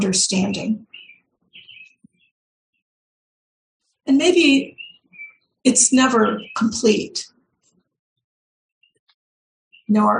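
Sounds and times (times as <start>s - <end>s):
speech: 0.0s - 0.9s, 4.1s - 4.8s, 5.6s - 7.3s, 9.9s - 10.1s
bird singing outside a window: 0.0s - 2.9s, 4.1s - 7.2s, 8.8s - 10.1s.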